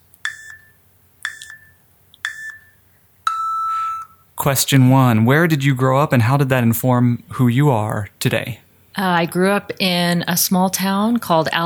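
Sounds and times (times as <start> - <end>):
sharp electronic beeps: 0.2 - 4.2
speech: 4.4 - 11.6.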